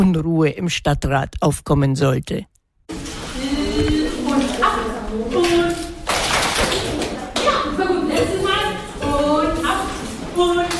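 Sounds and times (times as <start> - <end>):
speech: 0.0 - 3.0
young voices chattering and calling out: 3.2 - 6.1, 6.7 - 10.7
group of children clapping a rhythmic pattern: 5.5 - 7.6.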